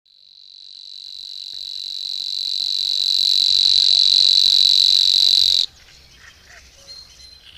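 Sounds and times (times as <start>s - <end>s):
Savi's warbler reeling: 0.1s - 5.7s.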